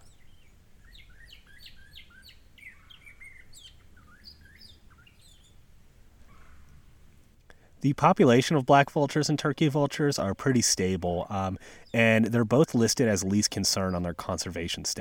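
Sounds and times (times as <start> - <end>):
northern cardinal singing downslurred whistles: 0.0 - 5.7, 9.2 - 14.9
speech: 7.8 - 14.9.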